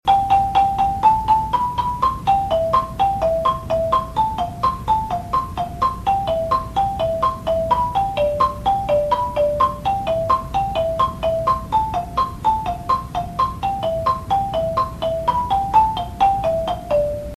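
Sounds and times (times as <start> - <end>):
marimba lead melody in middle high register: 0.1 - 17.3.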